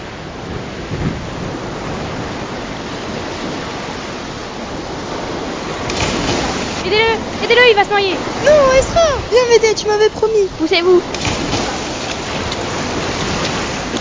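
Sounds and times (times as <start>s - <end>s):
gusting wind over stormy sea: 0.0s - 13.9s
stormy rough sea surf crashing: 0.0s - 13.9s
speech: 6.9s - 11.3s.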